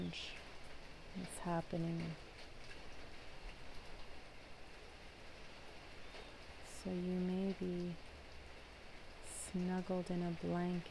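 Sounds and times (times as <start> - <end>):
speech: 0.0 - 0.4, 1.2 - 2.3, 6.8 - 8.1, 9.5 - 10.8
steady rain on a gray day: 0.0 - 10.8.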